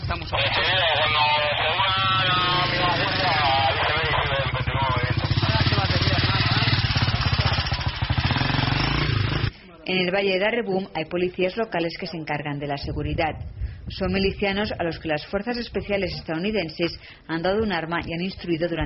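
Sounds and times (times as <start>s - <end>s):
motorcycle engine idling: 0.0s - 9.5s
speech: 9.9s - 18.8s.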